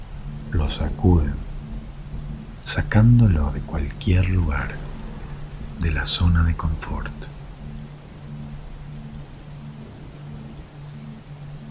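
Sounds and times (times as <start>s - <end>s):
heavy rain from a summer thunderstorm: 0.0s - 11.6s
low rumbling undertone: 0.0s - 11.6s
speech: 0.6s - 1.5s, 2.7s - 4.8s, 5.8s - 7.3s.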